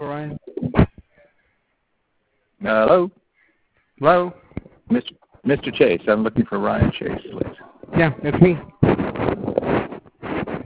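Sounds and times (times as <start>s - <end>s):
speech: 2.6s - 3.2s, 4.0s - 4.4s, 5.0s - 8.7s
wind buffeting a phone microphone outdoors over a phone line: 6.7s - 10.6s.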